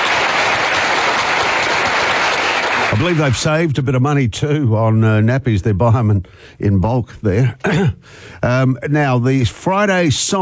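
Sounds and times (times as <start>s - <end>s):
crowd applause: 0.0s - 3.3s
speech: 3.0s - 10.4s.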